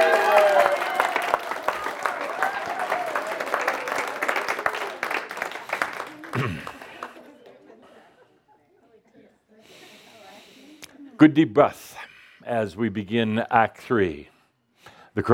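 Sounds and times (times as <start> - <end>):
crowd applauding: 0.0 - 8.0
laughter: 3.6 - 11.2
speech: 11.2 - 14.3.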